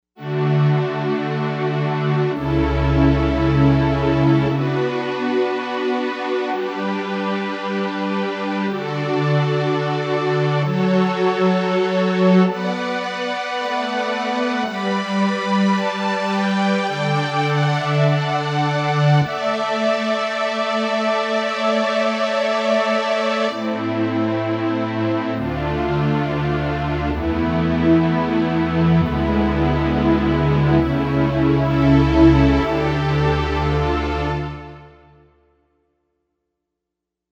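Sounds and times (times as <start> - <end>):
legato strings on a Novation UltraNova synthesizer: 0.2 - 35.0.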